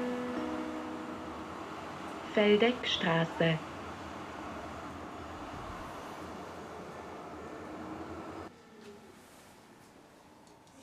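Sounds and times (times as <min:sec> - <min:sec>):
S-Bahn commuter train rumbling: 0:00.0 - 0:08.5
speech: 0:02.4 - 0:03.7.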